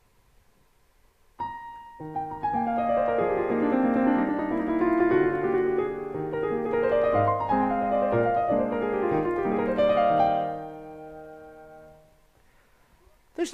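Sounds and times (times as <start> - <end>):
piano playing an impromptu: 1.4 - 12.2.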